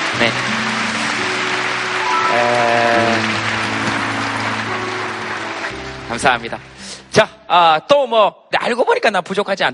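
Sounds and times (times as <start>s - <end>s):
audience applauding: 0.0s - 6.8s
speech: 0.2s - 0.6s, 6.2s - 9.7s.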